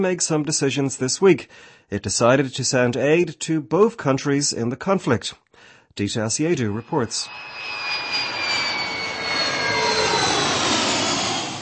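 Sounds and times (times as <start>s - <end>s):
speech: 0.0s - 7.9s
Czech army aircraft jet engine roaring with high whining tones: 6.4s - 11.6s.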